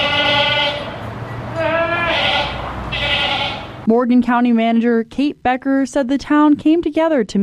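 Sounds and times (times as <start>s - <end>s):
goats bleating while being moved during a canyon fire evacuation: 0.0s - 3.8s
speech: 3.9s - 7.4s.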